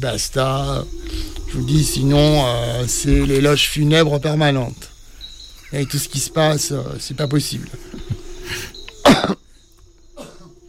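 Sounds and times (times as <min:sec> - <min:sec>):
speech: 0:00.0 - 0:04.9, 0:05.7 - 0:09.4
person coughing: 0:09.0 - 0:09.4, 0:10.2 - 0:10.5.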